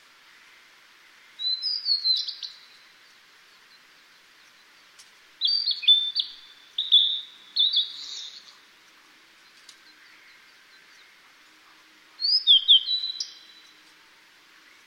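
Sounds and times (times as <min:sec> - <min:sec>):
faint background hiss: 0:00.0 - 0:14.8
Blue-and-white flycatcher singing whistled song phrases with descending slurs: 0:01.4 - 0:02.8, 0:05.4 - 0:08.6, 0:12.2 - 0:13.8.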